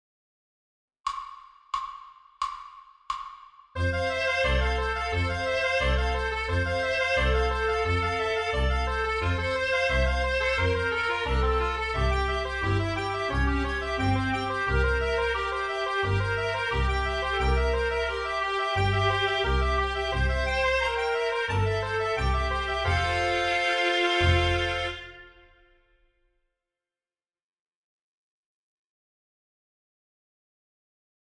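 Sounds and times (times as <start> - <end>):
horns playing in fifths: 3.8 - 25.8.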